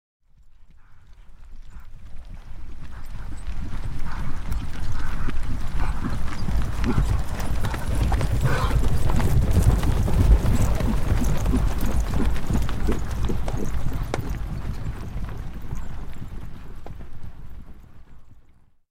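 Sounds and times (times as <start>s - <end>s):
horses trotting by: 0.3s - 18.8s.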